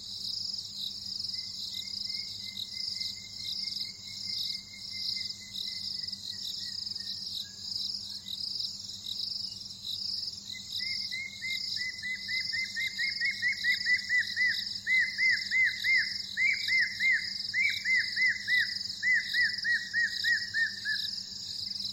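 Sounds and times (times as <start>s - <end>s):
Spotted thick-knee Burhinus capensis calling whistled arched notes: 10.8s - 21.1s.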